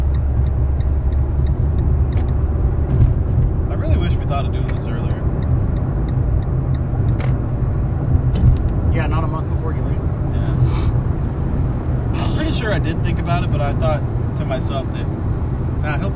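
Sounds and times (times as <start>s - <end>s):
road traffic rumbling: 0.0s - 16.1s
speech: 4.8s - 5.2s, 13.3s - 15.2s, 15.8s - 16.1s.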